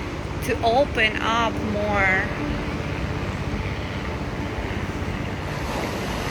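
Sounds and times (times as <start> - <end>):
helicopter flying overhead: 0.0 - 6.2
wind-like outdoor noise: 0.0 - 6.2
speech: 0.5 - 2.6.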